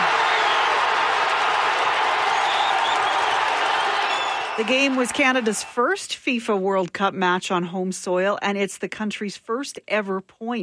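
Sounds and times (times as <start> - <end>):
large festival crowd cheering and clapping: 0.0 - 6.1
speech: 4.6 - 10.6.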